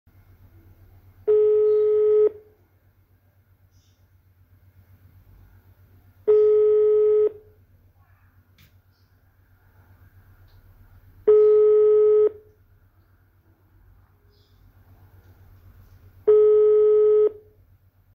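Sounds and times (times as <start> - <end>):
phone calling: 1.2 - 2.6, 6.2 - 7.6, 11.2 - 12.6, 16.2 - 17.5.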